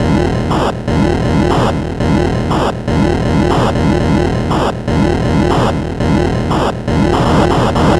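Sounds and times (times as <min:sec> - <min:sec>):
Atari 2600 8-bit chiptune noise drums: 0:00.0 - 0:07.9.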